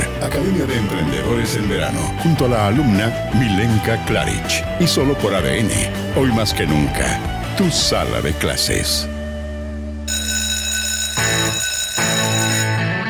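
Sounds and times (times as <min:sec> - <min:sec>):
speech: 0:00.2 - 0:09.1
school bell ringing: 0:10.1 - 0:13.0.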